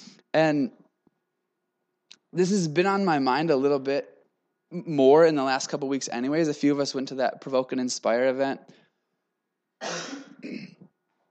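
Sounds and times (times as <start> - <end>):
speech: 0.4 - 0.8, 2.3 - 4.1, 4.7 - 8.8
harsh raspy cough: 9.8 - 10.9.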